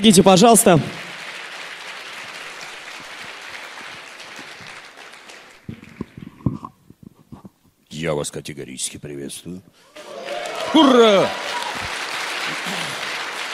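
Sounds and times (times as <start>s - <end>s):
speech: 0.0s - 1.1s, 8.1s - 12.0s
audience applause welcoming a speaker: 0.3s - 6.4s, 9.9s - 13.5s.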